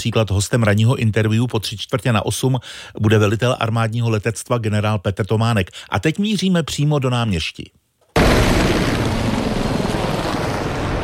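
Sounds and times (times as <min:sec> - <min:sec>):
speech: 0:00.0 - 0:07.8
H-1 military helicopters roaring at a military base: 0:08.2 - 0:11.0.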